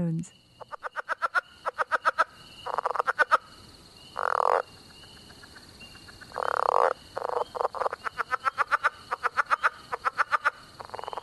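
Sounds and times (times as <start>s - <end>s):
speech: 0.0s - 0.4s
frog calls: 0.0s - 11.2s
leopard frog chuckling call: 0.6s - 3.5s, 6.3s - 11.2s.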